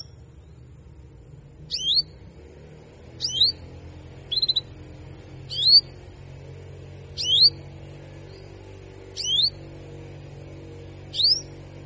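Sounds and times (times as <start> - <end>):
faint low hum: 0.0 - 11.8
female Belgian canary giving cuit cuit calls: 1.6 - 2.3, 3.0 - 6.1, 7.0 - 9.7, 11.0 - 11.8.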